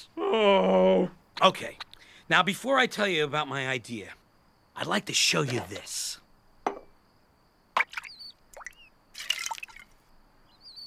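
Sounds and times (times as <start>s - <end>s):
speech: 0.0s - 4.2s, 4.8s - 6.2s
toy bird dipping its beak into a glass of water: 7.8s - 10.0s.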